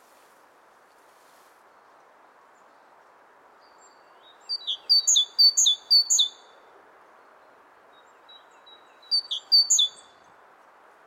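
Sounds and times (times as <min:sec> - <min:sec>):
great tit whistled song: 0:04.5 - 0:06.4, 0:09.0 - 0:10.0.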